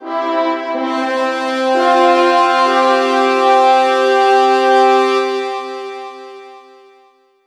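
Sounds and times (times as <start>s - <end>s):
fanfare jingle: 0.1s - 6.4s.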